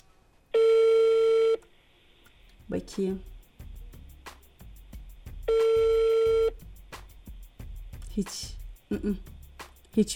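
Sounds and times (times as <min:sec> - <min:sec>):
telephone ringback tone while a call is being placed: 0:00.6 - 0:01.6, 0:05.5 - 0:06.5
speech: 0:02.7 - 0:03.3, 0:08.2 - 0:09.3, 0:10.0 - 0:10.1.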